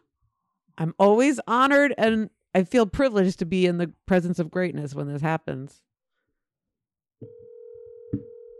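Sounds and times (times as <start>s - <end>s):
speech: 0.8s - 5.9s, 7.2s - 7.4s
telephone dial tone during a prank phone call: 7.2s - 8.5s.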